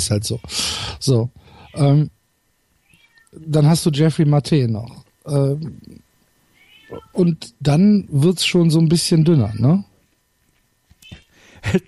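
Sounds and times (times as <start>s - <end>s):
speech: 0.0s - 2.2s, 3.3s - 6.0s, 6.9s - 9.9s, 11.6s - 11.8s
cat meowing: 2.8s - 3.4s, 6.6s - 7.2s.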